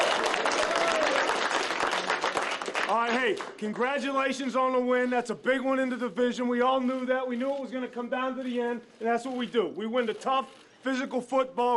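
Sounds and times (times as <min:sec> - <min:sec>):
group clapping after a football win: 0:00.0 - 0:04.2
speech: 0:02.9 - 0:11.7.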